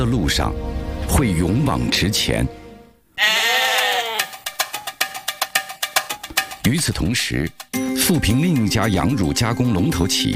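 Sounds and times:
speech: 0:00.0 - 0:02.6, 0:06.7 - 0:10.3
dairy goat bleating: 0:03.2 - 0:04.4
sharp clacking taps: 0:04.2 - 0:06.8.

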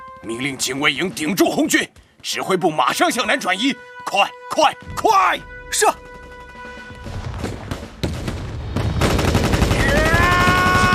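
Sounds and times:
speech: 0:00.2 - 0:06.1
enemy machine gun firing: 0:07.4 - 0:10.9.

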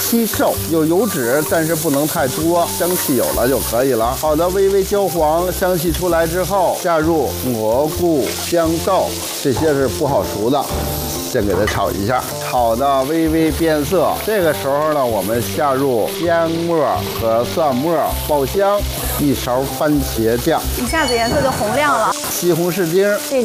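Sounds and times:
minced pork frying in a small amount of oil for a sauce: 0:00.0 - 0:23.4.

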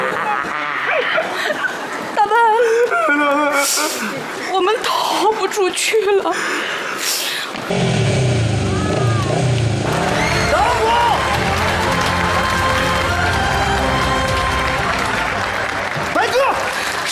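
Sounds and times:
laughter: 0:00.0 - 0:04.4
speech: 0:05.6 - 0:08.0
motorcycle engine roaring: 0:07.7 - 0:10.6
noisy crowd-like commotion: 0:07.7 - 0:17.0.

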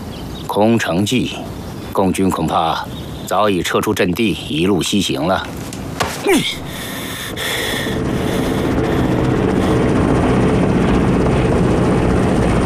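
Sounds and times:
speech: 0:00.5 - 0:07.6
aircraft flying overhead with loud engine roar: 0:02.8 - 0:12.6.

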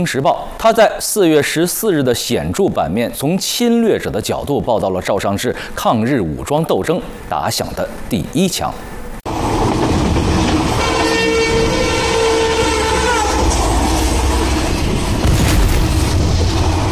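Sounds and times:
speech: 0:00.0 - 0:08.9
train rolling along the rails with rumble and rattling: 0:08.9 - 0:16.9.

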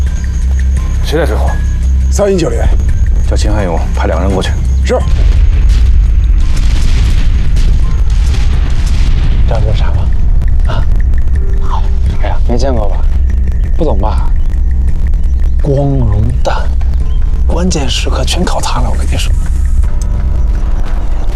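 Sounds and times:
people talking: 0:01.0 - 0:05.1, 0:09.4 - 0:13.2, 0:13.8 - 0:14.4, 0:15.6 - 0:16.8, 0:17.5 - 0:19.4
artillery bombardment opening an assault: 0:04.9 - 0:21.3.

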